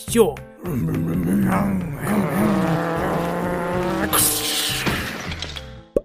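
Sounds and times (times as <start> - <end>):
speech: 0.1 - 2.5
race car engines roaring and whining as they rev: 2.0 - 5.4
race car tires squealing sharply: 2.1 - 5.4.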